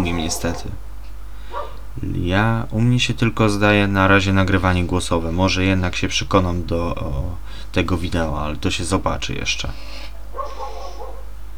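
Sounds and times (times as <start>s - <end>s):
dog barking at home: 0.0s - 0.8s, 1.5s - 1.8s, 10.0s - 11.4s
steady low hum: 0.0s - 11.5s
speech: 0.1s - 0.9s, 1.5s - 10.6s.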